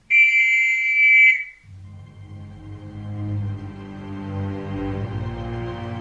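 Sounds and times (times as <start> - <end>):
shrill whistle blast: 0.0 - 1.7
low rumbling musical drone: 1.4 - 5.9.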